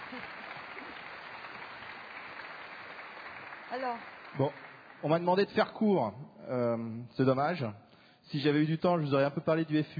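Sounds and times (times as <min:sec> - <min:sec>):
audience applause for award recipients: 0:00.0 - 0:05.6
speech: 0:03.7 - 0:09.9.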